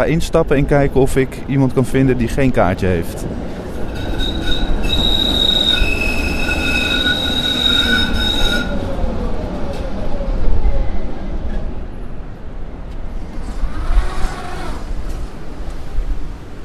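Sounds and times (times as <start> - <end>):
speech: 0.0 - 3.5
old tram rumbling: 0.0 - 16.6
old tram wheels squealing on rails: 3.4 - 11.7, 13.3 - 15.4.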